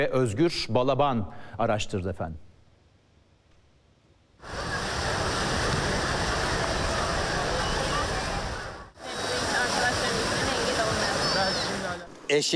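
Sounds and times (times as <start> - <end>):
speech: 0.0 - 2.5, 12.3 - 12.5
waves breaking on a beach in Istanbul Turkey: 4.4 - 12.5.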